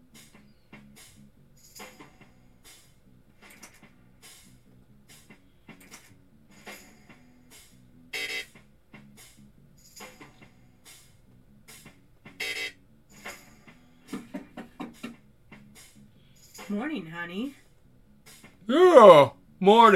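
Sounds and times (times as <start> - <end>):
car alarm blaring next door: 8.2 - 8.5, 12.4 - 12.8
speech: 16.7 - 17.6, 18.7 - 19.9.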